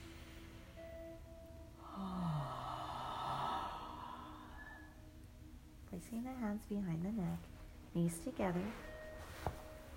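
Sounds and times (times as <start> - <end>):
deep inhale and yawn: 1.8 - 4.9
speech: 5.9 - 8.9.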